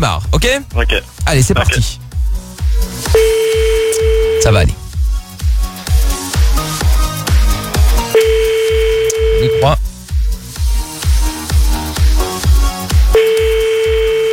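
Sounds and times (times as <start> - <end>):
speech: 0.0 - 2.0, 4.4 - 4.8, 9.6 - 9.8
thumping rhythmic music beat: 0.0 - 14.3
ringing tone of an unanswered outgoing telephone call: 3.2 - 4.5, 8.2 - 9.7, 13.2 - 14.3.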